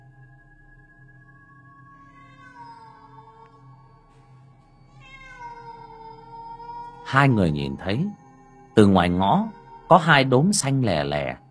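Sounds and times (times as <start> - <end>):
black cat yowling eerily at night: 2.1 - 3.6, 5.0 - 8.1, 9.0 - 10.4
speech: 7.1 - 8.2, 8.8 - 11.4.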